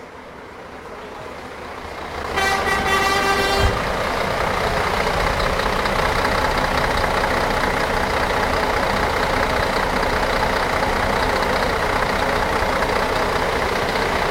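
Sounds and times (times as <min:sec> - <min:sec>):
diesel tour bus engine and exhaust idling: 0:00.0 - 0:14.3
short tonal horn-like toot: 0:02.3 - 0:03.9.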